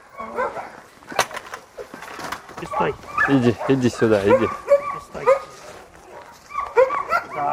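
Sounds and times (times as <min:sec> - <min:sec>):
several dogs barking and whimpering excitedly before a walk: 0:00.0 - 0:00.9, 0:02.6 - 0:07.5
speech: 0:02.6 - 0:04.7.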